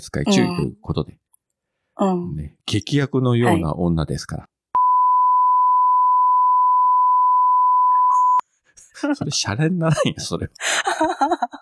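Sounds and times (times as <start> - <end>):
speech: 0.0 - 1.3, 2.0 - 4.5, 9.0 - 11.6
steady censor bleep tone at about 1 kHz: 4.8 - 8.4
laughter: 9.2 - 11.6.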